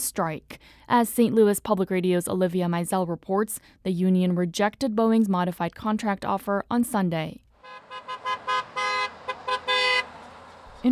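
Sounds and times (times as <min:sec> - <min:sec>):
speech: 0:00.0 - 0:08.3
car horns honking: 0:07.6 - 0:10.9
low rumble of passing traffic: 0:07.6 - 0:10.9.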